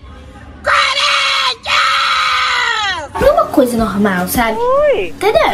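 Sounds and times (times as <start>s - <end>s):
woman football fan screaming: 0.9s - 3.1s
speech: 3.6s - 5.5s.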